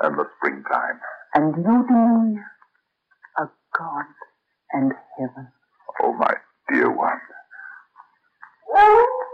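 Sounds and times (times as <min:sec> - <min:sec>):
speech: 0:00.0 - 0:02.5, 0:03.4 - 0:07.4
dog howling: 0:08.7 - 0:09.3.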